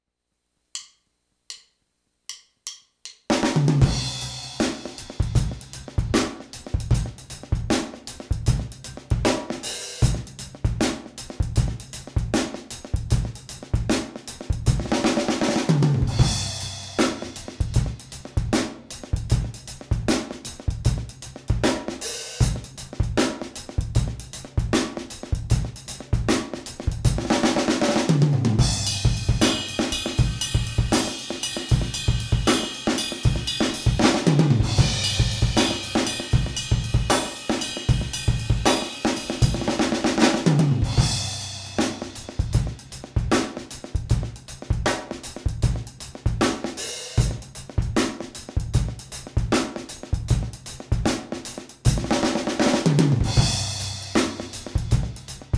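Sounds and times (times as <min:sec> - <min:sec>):
12/8 drum groove at 155 BPM: 0:00.8 - 0:01.7, 0:02.3 - 0:55.5.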